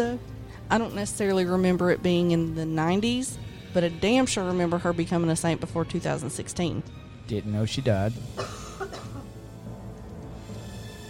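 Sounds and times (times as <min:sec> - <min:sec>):
speech: 0:00.0 - 0:08.6
dry cough: 0:08.3 - 0:09.4.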